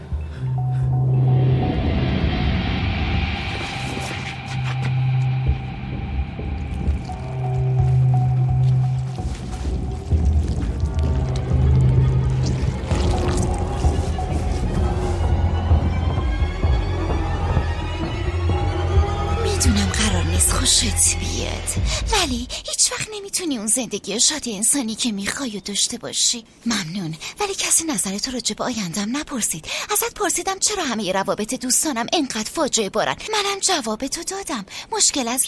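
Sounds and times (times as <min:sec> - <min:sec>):
low droning hum: 0:00.0 - 0:22.5
water dripping: 0:04.5 - 0:14.0
water pouring and splashing: 0:06.6 - 0:14.6
speech: 0:23.4 - 0:35.4.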